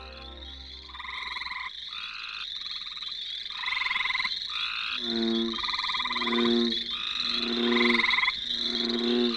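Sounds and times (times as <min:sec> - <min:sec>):
chorus of frogs croaking at a pond: 0:00.0 - 0:09.3.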